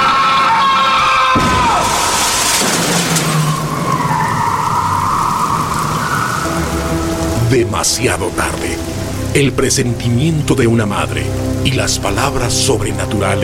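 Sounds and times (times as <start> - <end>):
speeding car's tires screeching as it skids: 0.0 - 7.7
heavy impact of car striking a man: 1.4 - 4.1
speech: 7.5 - 8.6, 9.3 - 13.4.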